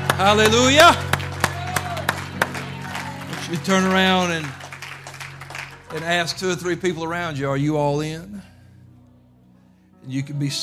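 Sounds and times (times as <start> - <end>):
audience clapping hands in praise: 0.0 - 6.2
speech: 0.2 - 1.1, 3.5 - 4.6, 5.9 - 8.5, 10.0 - 10.6.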